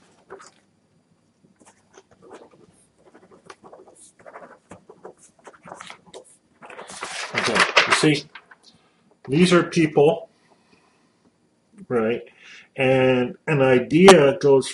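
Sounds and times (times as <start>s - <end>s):
writing on paper: 1.6s - 6.4s
paper rustling as someone rummages for paper: 1.6s - 8.6s
speech: 7.4s - 8.3s, 9.3s - 10.2s, 12.8s - 13.0s, 13.9s - 14.7s.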